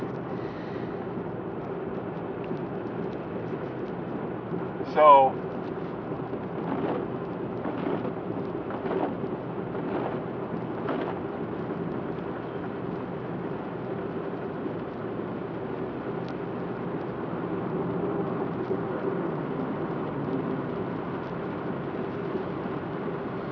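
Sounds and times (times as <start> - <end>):
steady rain: 0.0 - 23.5
speech: 4.9 - 5.4
thunder rolling under the downpour: 5.4 - 12.7.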